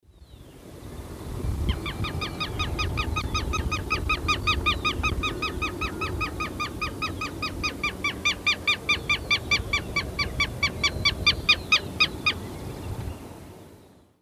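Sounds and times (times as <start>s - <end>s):
Vanellus chilensis calls: 1.6s - 12.8s.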